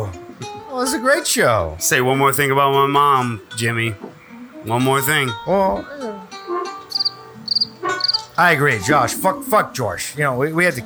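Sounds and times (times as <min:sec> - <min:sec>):
speech: 0:00.7 - 0:06.1, 0:08.4 - 0:10.8
cricket chirping: 0:06.9 - 0:08.5.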